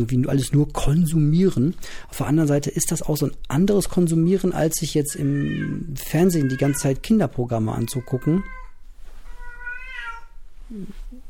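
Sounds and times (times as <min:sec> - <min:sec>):
speech: 0:00.0 - 0:08.6, 0:10.7 - 0:11.1
cat meowing: 0:05.1 - 0:07.0, 0:07.8 - 0:10.4
cat's short lower-pitched chirp: 0:09.4 - 0:10.4.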